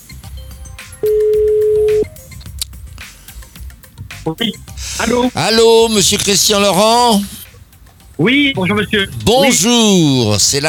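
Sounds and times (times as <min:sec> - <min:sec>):
telephone ringing on an outgoing call: 0:01.0 - 0:02.1
speech: 0:04.2 - 0:07.4, 0:08.2 - 0:10.6.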